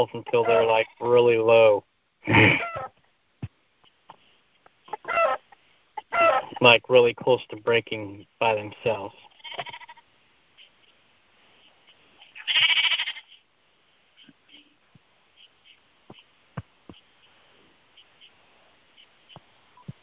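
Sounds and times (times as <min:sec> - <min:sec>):
sheep bleating in a video game: 0:00.0 - 0:01.2, 0:09.2 - 0:10.0, 0:12.3 - 0:13.4
speech: 0:00.0 - 0:02.9, 0:06.6 - 0:09.8, 0:12.5 - 0:12.7
faint clicks and taps: 0:16.1 - 0:17.3.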